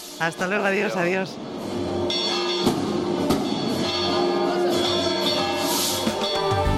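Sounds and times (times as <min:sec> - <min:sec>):
speech: 0:00.2 - 0:01.6
church bells swinging and pealing: 0:02.1 - 0:06.7.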